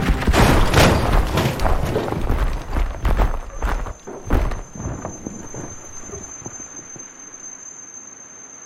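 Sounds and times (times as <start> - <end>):
violent crash into a car: 0.2 - 6.0.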